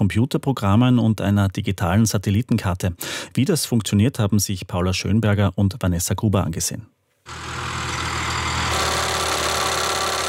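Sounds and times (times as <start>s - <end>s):
speech: 0.0s - 7.6s
heavy tractor engine running during soil drilling: 7.3s - 10.2s.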